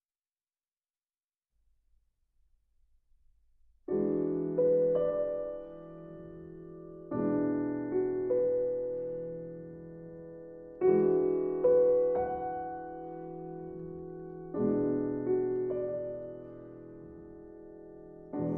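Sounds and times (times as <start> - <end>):
violin and piano sonata: 4.0 - 18.5.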